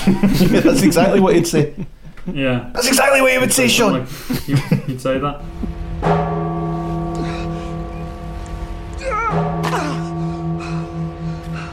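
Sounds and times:
laughter: 0.0 - 2.4, 4.2 - 5.1
speech: 0.1 - 6.3
sustained droning bell tone with ringing overtones: 5.4 - 11.7.

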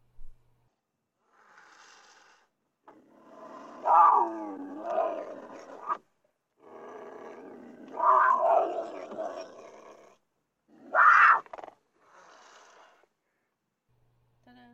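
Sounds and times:
mountain lion screaming: 3.0 - 6.0, 6.6 - 13.0.

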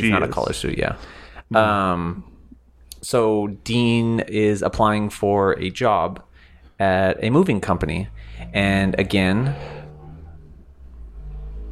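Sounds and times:
speech: 0.0 - 2.3, 3.0 - 9.8
large moving truck driving by outside: 7.7 - 11.6.

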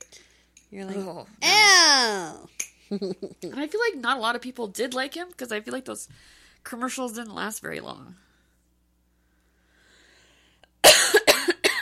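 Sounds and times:
speech: 0.7 - 8.3
person coughing after inhaling cheese-snack dust: 10.8 - 11.8.

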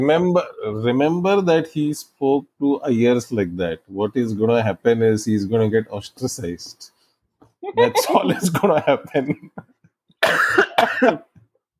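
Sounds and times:
speech: 0.0 - 6.9, 7.6 - 9.7, 10.3 - 11.3
person coughing harshly: 7.8 - 8.5, 10.2 - 11.4
laughter: 7.8 - 9.8.

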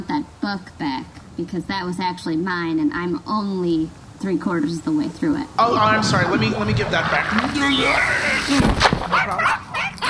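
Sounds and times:
speech: 0.0 - 9.4
dog yipping and whimpering: 9.1 - 10.0.

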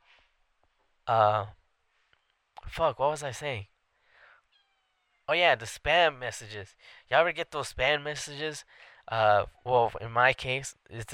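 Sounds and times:
speech: 1.1 - 1.6, 2.6 - 3.7, 5.3 - 11.1
cat meowing: 4.5 - 5.3.

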